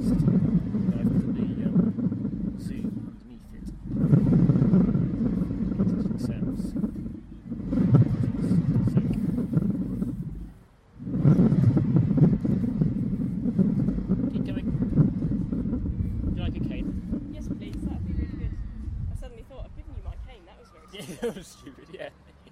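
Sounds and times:
turning wheel rumbling: 0:00.0 - 0:22.5
laughter: 0:20.9 - 0:22.5.

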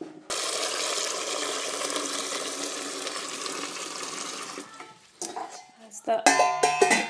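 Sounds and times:
tap filling a big pan with salty water for cooking pasta: 0:00.3 - 0:04.8
speech: 0:06.1 - 0:06.5.

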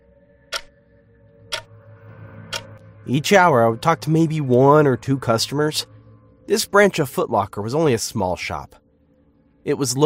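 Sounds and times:
low steady hum: 0:02.4 - 0:10.0
clock ticking: 0:02.5 - 0:02.7
speech: 0:03.0 - 0:05.9, 0:06.5 - 0:08.8, 0:09.6 - 0:10.0.

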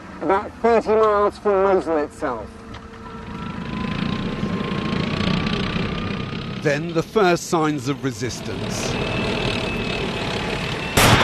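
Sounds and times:
heavy engines rumbling: 0:00.0 - 0:11.2
speech: 0:00.2 - 0:02.6, 0:06.6 - 0:09.3
tank cannon firing at a truck bomb in the desert: 0:10.8 - 0:11.2.

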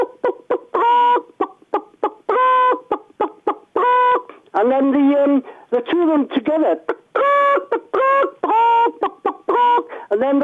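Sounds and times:
voice imitating a hen cackling: 0:00.0 - 0:04.4, 0:06.8 - 0:10.4
speech: 0:04.6 - 0:07.0, 0:10.2 - 0:10.4.

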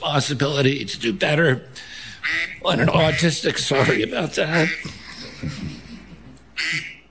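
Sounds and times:
speech: 0:00.0 - 0:05.8, 0:06.6 - 0:06.9
duck quack ringtone on a phone: 0:02.2 - 0:04.9, 0:06.6 - 0:07.0
laughter: 0:02.6 - 0:07.0.

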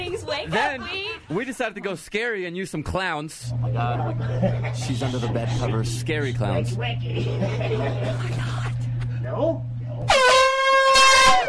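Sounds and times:
laughter: 0:00.0 - 0:02.3, 0:03.5 - 0:09.2
speech: 0:00.4 - 0:08.7, 0:09.3 - 0:10.2
low droning hum: 0:03.4 - 0:11.4
faint murmuring voices: 0:03.5 - 0:10.1
air horn blast: 0:10.1 - 0:11.4.

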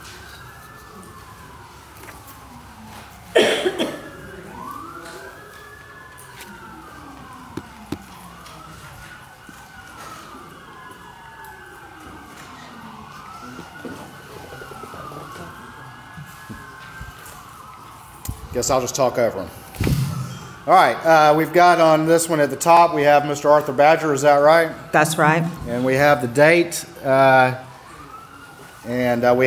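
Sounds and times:
emergency vehicle sirens passing by: 0:00.0 - 0:29.4
traffic rumble: 0:00.0 - 0:29.4
speech: 0:18.6 - 0:19.6, 0:20.7 - 0:27.7, 0:28.8 - 0:29.4
brief thump: 0:19.8 - 0:20.5.

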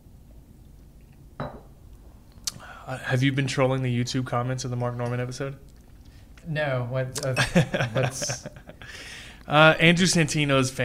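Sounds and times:
quiet hum: 0:00.0 - 0:10.8
glass clink at a spirits tasting: 0:01.4 - 0:01.7
speech: 0:02.9 - 0:05.7, 0:06.4 - 0:10.8
laughter: 0:07.3 - 0:08.9.

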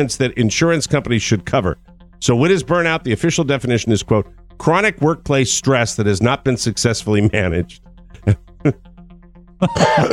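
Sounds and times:
speech: 0:00.0 - 0:08.9, 0:09.6 - 0:10.1
person clearing throat: 0:09.6 - 0:10.1
person coughing: 0:09.6 - 0:10.1.

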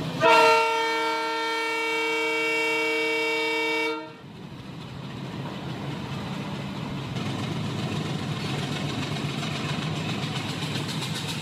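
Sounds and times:
trial-run train rumbling and rattling past on tracks in Sri Lanka: 0:00.0 - 0:11.4
trial-run train horn blast on the Omanthai to Kilinochchi railway in Sri Lanka: 0:00.2 - 0:04.2.

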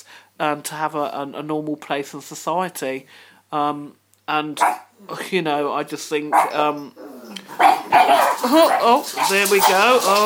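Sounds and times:
speech: 0:00.4 - 0:10.2
dogs barking excitedly and yelping: 0:04.6 - 0:04.9, 0:06.3 - 0:10.2.

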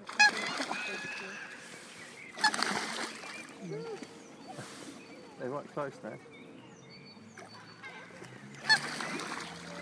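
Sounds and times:
geese honking: 0:00.1 - 0:03.5, 0:07.8 - 0:09.7
speech: 0:05.6 - 0:06.4.

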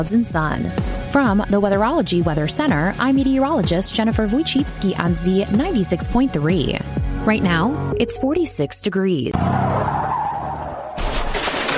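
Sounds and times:
speech: 0:00.0 - 0:09.9
car tires skidding: 0:09.4 - 0:11.2
vehicle hitting a deer: 0:10.9 - 0:11.7.

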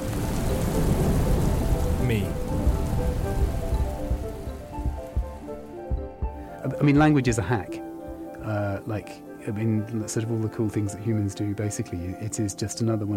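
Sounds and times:
deep rumbling thunder: 0:00.0 - 0:08.3
heavy rain pouring: 0:00.0 - 0:13.1
speech: 0:02.1 - 0:02.4, 0:06.8 - 0:07.8, 0:08.4 - 0:13.1.

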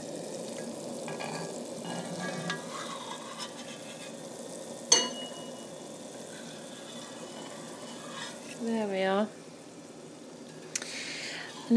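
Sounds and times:
jelly mixture boiling in a pan: 0:00.0 - 0:11.7
faint scraping of stirring in a pan: 0:01.2 - 0:04.3, 0:04.9 - 0:08.9
speech: 0:08.6 - 0:09.4.

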